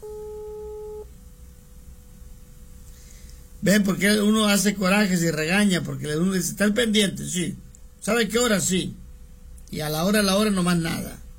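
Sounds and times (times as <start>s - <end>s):
telephone ringback tone of an unanswered call: 0.0s - 1.1s
low telephone line hiss: 0.0s - 11.3s
speech: 3.6s - 9.0s, 9.7s - 11.2s.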